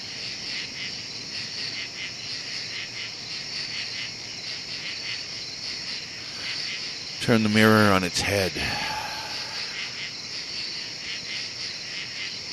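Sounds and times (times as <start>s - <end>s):
crickets chirping at night: 0.0s - 12.5s
speech: 7.3s - 8.9s.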